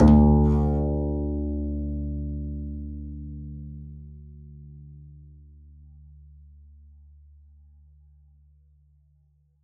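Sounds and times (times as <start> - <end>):
double bass pizzicato D2: 0.0 - 3.6.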